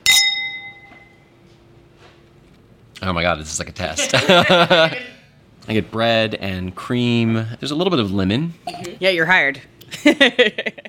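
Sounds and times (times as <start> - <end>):
champagne glasses clinking in a toast: 0.0 - 1.2
speech: 3.0 - 10.8
laughter: 4.0 - 5.2, 9.9 - 10.8.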